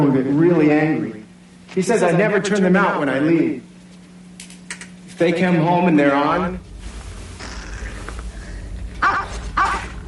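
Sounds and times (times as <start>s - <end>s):
speech: 0.0s - 3.7s, 5.2s - 6.7s
steady low rumble: 5.4s - 10.0s
dog barking in sharp yaps: 9.0s - 10.0s.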